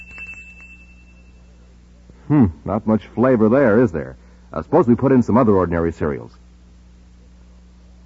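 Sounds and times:
faint thin bell ring from a flavor-testing machine fed plain cereal: 0.0s - 1.7s
low hum: 0.0s - 8.0s
speech: 2.3s - 6.4s.

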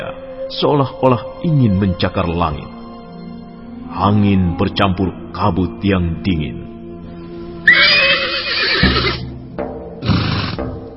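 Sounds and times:
speech: 0.0s - 2.8s, 4.0s - 6.6s
horse neighing beside a horse cart in a courtyard: 7.7s - 9.3s, 10.0s - 10.6s.

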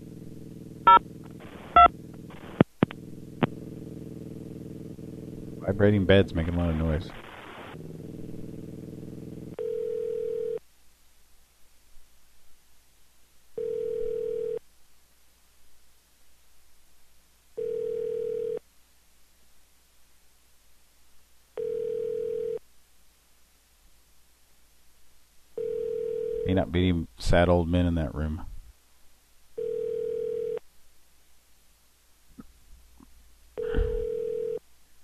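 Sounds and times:
quiet hiss: 0.0s - 3.8s, 4.9s - 35.0s
speech: 5.7s - 7.2s, 26.7s - 28.5s
faint mid-pitched telephone line tone beeps: 9.6s - 10.6s, 13.6s - 14.6s, 21.6s - 22.6s, 29.6s - 30.6s, 33.6s - 34.6s.

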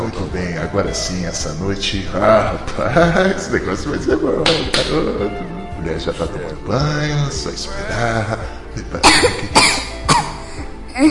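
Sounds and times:
speech: 0.1s - 9.6s
laughter: 2.3s - 6.2s
child coughing: 9.0s - 10.4s.

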